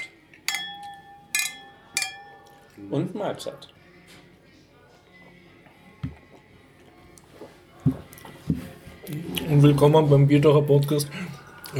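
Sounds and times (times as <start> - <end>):
beer glasses clinking in a toast: 0.0 - 2.8
speech: 2.8 - 3.8, 9.5 - 11.7.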